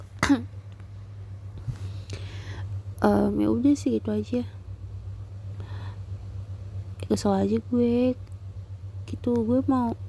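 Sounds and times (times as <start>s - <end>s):
low steady hum: 0.0s - 10.0s
person coughing: 0.2s - 0.5s
speech: 0.3s - 0.6s, 3.0s - 4.6s, 7.1s - 8.2s, 9.1s - 10.0s.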